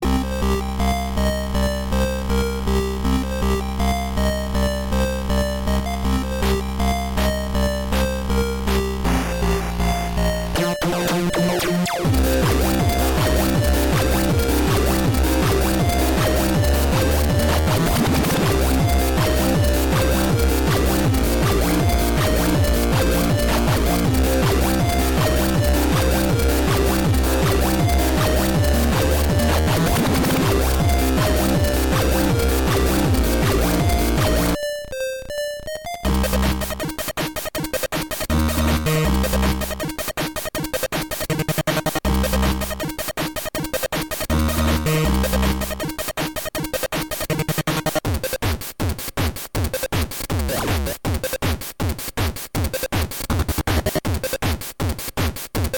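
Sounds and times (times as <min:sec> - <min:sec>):
music: 0:00.0 - 0:55.7.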